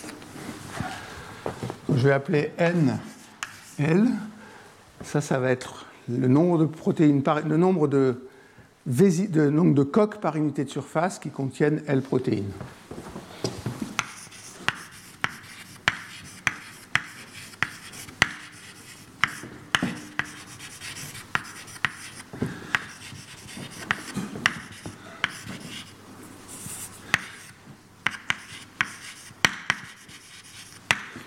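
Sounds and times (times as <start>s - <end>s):
speech: 1.9s - 3.1s, 3.8s - 4.3s, 5.0s - 12.8s
chalk or marker taps and scratches on a board: 3.0s - 3.9s, 14.0s - 31.0s.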